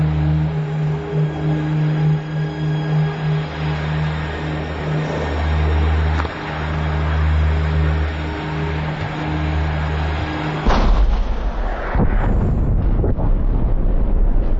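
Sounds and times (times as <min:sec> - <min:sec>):
steady low rumble: 0:00.0 - 0:14.5
continuous roaring wind-buffeted volcanic eruption: 0:10.5 - 0:14.5
loud volcanic vent explosions: 0:10.6 - 0:14.5.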